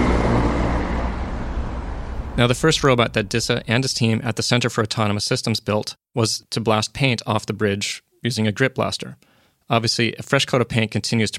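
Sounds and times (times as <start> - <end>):
heavy traffic crossing a bridge designed 100 years ago: 0.0 - 4.0
speech: 2.4 - 11.3.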